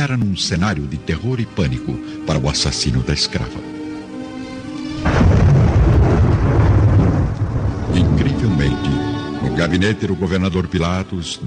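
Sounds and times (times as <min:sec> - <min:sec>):
speech: 0:00.0 - 0:03.8, 0:09.6 - 0:11.4
deep rolling rumble of thunder in a storm: 0:05.0 - 0:09.1.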